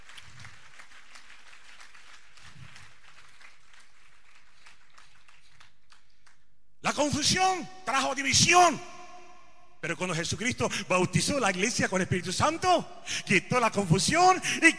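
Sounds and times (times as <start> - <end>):
large crowd applauding: 0.0 - 6.4
speech: 7.0 - 8.9, 9.8 - 14.7.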